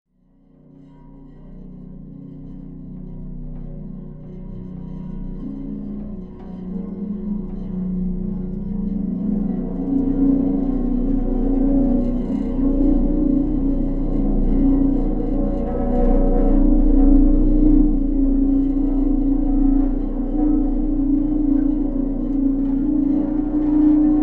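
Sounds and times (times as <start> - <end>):
harmonic tone: 3.1 - 24.2.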